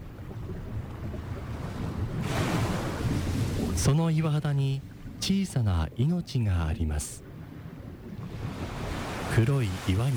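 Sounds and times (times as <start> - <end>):
rough ocean waves crashing against rocks: 1.4 - 4.8, 8.3 - 10.1
speech: 3.8 - 7.3, 9.4 - 10.1.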